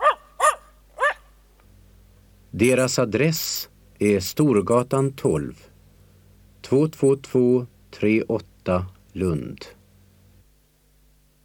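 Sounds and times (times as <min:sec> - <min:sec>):
family dog barking: 0:00.0 - 0:01.3
speech: 0:02.6 - 0:05.7, 0:06.6 - 0:09.8.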